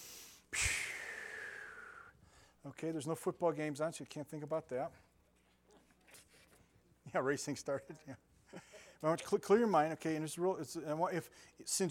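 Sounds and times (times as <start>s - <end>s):
deep cleansing breath with snort-like rush of air: 0.0s - 2.6s
speech: 2.6s - 5.1s, 7.1s - 11.8s.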